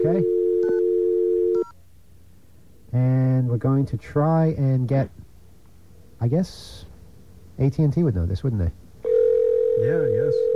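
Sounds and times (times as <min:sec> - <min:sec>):
telephone line tone, steady electronic hum: 0:00.0 - 0:01.8, 0:09.0 - 0:10.5
speech: 0:02.9 - 0:05.2, 0:06.2 - 0:06.9, 0:07.6 - 0:08.8, 0:09.8 - 0:10.5.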